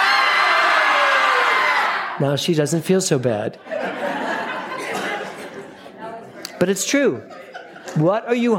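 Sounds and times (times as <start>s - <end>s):
audience screaming together on cue: 0.0s - 2.2s
speech: 2.2s - 4.0s, 6.6s - 8.5s
laughter: 3.6s - 8.5s.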